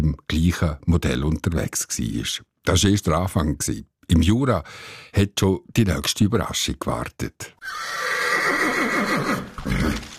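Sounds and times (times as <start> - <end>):
speech: 0.3 - 10.1
horse whinnying with a horse-drawn carriage in the Jura: 7.6 - 10.1
rustling: 9.4 - 10.1.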